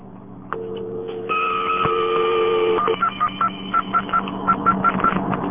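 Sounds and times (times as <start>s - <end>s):
telephone dialing tones: 0.6s - 5.4s.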